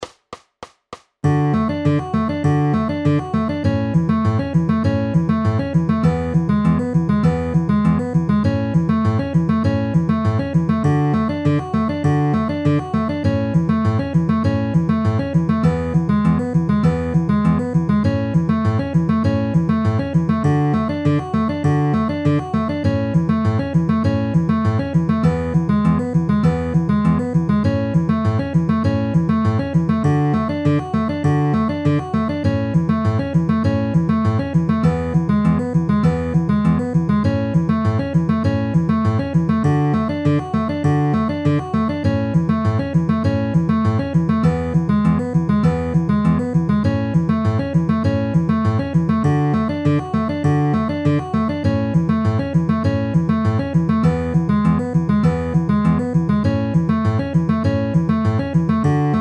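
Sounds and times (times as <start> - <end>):
D A E A pinched notes: 1.2 - 59.1.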